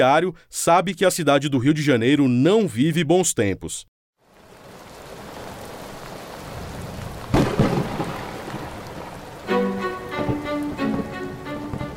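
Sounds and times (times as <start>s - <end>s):
speech: 0.0s - 3.9s
heavy rain hissing: 4.2s - 11.9s
thunder cracking and rumbling: 6.4s - 9.3s.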